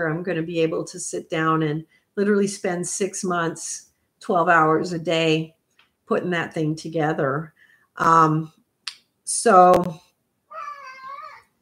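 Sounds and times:
speech: 0.0s - 8.6s, 9.3s - 10.0s
cat meowing: 10.5s - 11.5s.

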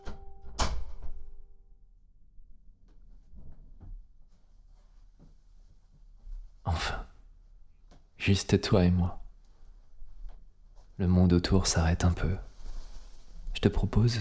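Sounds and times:
door shutting with a solid thud: 0.0s - 1.4s
faint shuffling: 2.9s - 14.1s
speech: 8.2s - 9.2s, 11.0s - 12.5s, 13.6s - 14.1s.

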